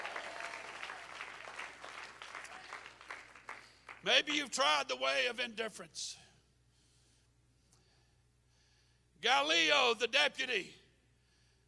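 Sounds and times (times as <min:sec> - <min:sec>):
crowd clapping hands in dense steady applause: 0:00.0 - 0:04.0
speech: 0:04.0 - 0:06.2, 0:09.2 - 0:10.8.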